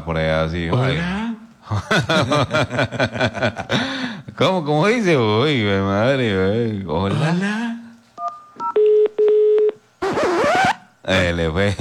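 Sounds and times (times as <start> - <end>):
speech: 0.1 - 7.6, 11.1 - 11.7
laughter: 1.6 - 4.4
telephone dialing tones: 8.2 - 9.8
harsh warbling electronic screech: 10.0 - 10.9.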